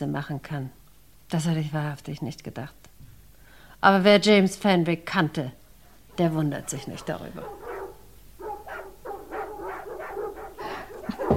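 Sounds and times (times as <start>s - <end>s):
speech: 0.0s - 2.9s, 3.8s - 5.6s, 6.2s - 7.6s
dogs barking at a house: 5.9s - 11.3s.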